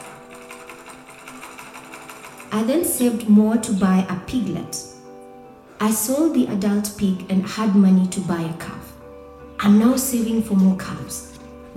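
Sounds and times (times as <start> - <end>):
sewing machine used for dressmaking running: 0.0 - 3.0
speech: 2.5 - 4.9, 5.8 - 8.9, 9.6 - 11.7.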